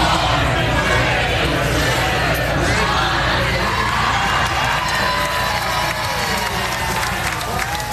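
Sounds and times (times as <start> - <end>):
large crowd of football fans roaring and cheering in a public square: 0.0 - 7.9
shouts and whoops of football fans: 3.9 - 7.9.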